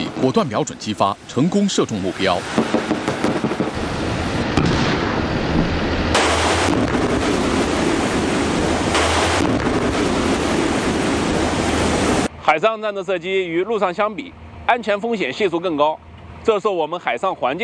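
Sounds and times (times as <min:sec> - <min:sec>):
high churning sea waves: 0:00.0 - 0:12.3
strong wind at sea: 0:00.0 - 0:12.4
speech: 0:00.2 - 0:02.8, 0:12.5 - 0:17.6.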